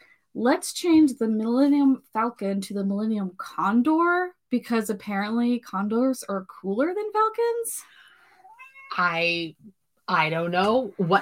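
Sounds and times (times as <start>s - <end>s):
speech: 0.4s - 8.0s, 8.9s - 11.2s
female cat meowing: 8.4s - 9.2s.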